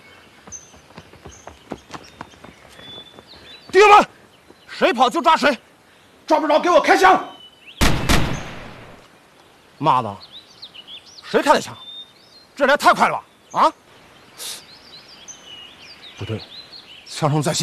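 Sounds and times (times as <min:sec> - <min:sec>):
birds chirping: 0:00.0 - 0:17.6
distant gunshots: 0:07.8 - 0:09.0.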